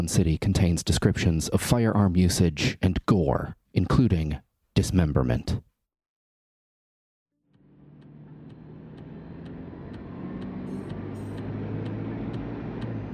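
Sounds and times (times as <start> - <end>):
speech: 0.0 - 5.7
Bentley engine rumbling while speeding north: 7.5 - 13.1
low road noise: 7.5 - 13.1.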